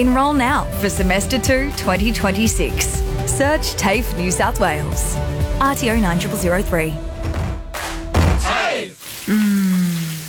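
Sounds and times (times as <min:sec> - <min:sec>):
speech: 0:00.0 - 0:07.1, 0:09.3 - 0:09.6
splash or thud: 0:07.3 - 0:08.5
shower water spraying: 0:09.0 - 0:10.2
person humming or singing sustained tones: 0:09.3 - 0:10.2.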